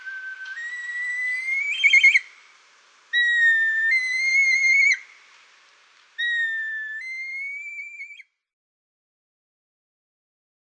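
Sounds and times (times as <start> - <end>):
red kite whistled calls: 0.0 - 2.4, 3.1 - 5.1, 6.2 - 8.2.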